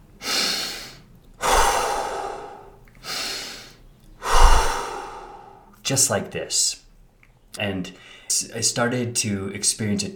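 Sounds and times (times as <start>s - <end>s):
deep breathing in through nose and out through mouth: 0.2s - 5.7s
speech: 5.9s - 6.8s, 7.6s - 10.1s.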